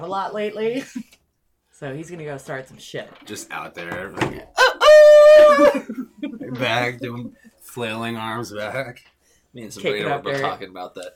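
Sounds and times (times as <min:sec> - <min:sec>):
speech: 0:00.0 - 0:01.1, 0:01.8 - 0:11.1
rooster crowing: 0:04.6 - 0:05.9
laughter: 0:05.4 - 0:07.5.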